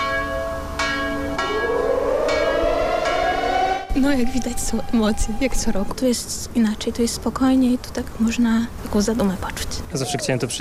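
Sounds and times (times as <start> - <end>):
large deep commemorative bell tolling: 0.0 - 6.0
air-raid alarm siren rising for an annual commemoration: 1.1 - 6.5
speech: 4.0 - 10.5.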